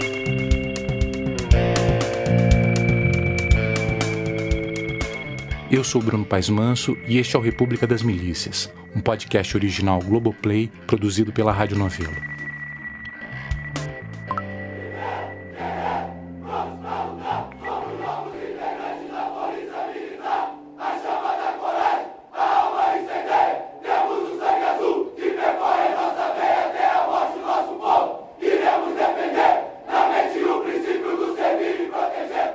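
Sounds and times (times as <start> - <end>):
brief low musical tone: 0.8 - 21.4
speech: 5.7 - 12.3
large group of military police cadets chanting a battle cry at graduation in Rio de Janeiro: 14.8 - 32.5.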